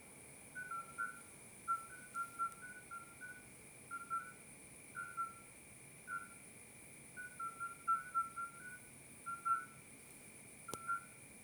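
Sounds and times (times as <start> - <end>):
midwife toads calling soft whistle-like beeps at night: 0.6 - 4.4, 5.0 - 5.5, 6.1 - 6.4, 7.2 - 9.8, 10.7 - 11.2.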